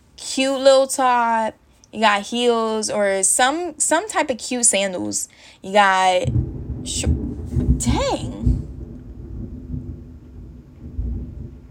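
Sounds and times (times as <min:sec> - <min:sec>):
speech: 0:00.4 - 0:07.2
deep rolling thunder rumbling: 0:06.2 - 0:11.6.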